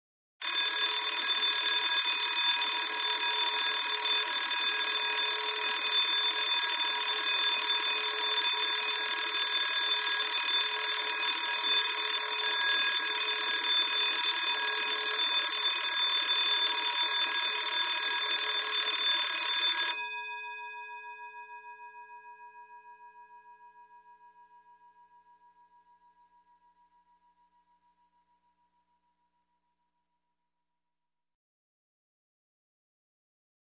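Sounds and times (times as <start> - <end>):
electronic fire alarm bell ringing: 0.4 - 20.5.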